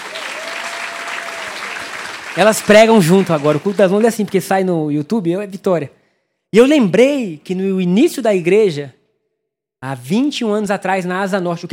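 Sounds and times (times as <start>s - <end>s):
church audience applauding: 0.0s - 4.4s
speech: 2.4s - 9.0s, 9.8s - 11.7s.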